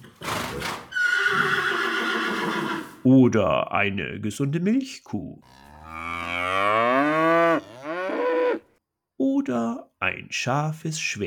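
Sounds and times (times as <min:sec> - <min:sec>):
horse neighing: 0:00.2 - 0:03.0, 0:05.4 - 0:08.6
speech: 0:03.1 - 0:05.6, 0:09.5 - 0:11.2.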